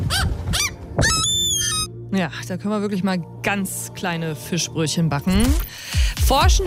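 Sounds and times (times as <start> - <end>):
gull calls: 0.0 - 1.9
speech: 2.1 - 6.6.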